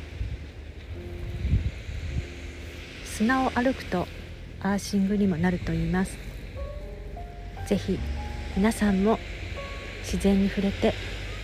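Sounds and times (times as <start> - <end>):
motor drone from several fishing boats heading out on the sea: 0.0 - 11.4
rumbling wind: 0.0 - 11.4
wash of the sea: 0.0 - 11.4
speech: 3.2 - 6.2, 7.7 - 9.4, 10.1 - 11.1.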